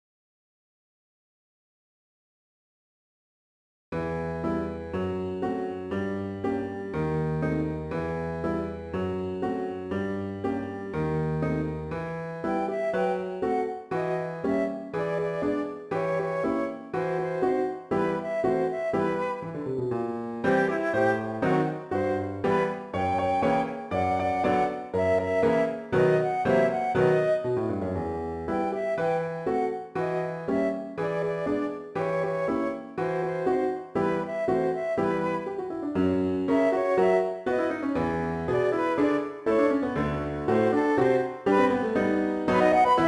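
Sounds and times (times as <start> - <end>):
piano: 3.9 - 43.0
flute: 12.3 - 43.0.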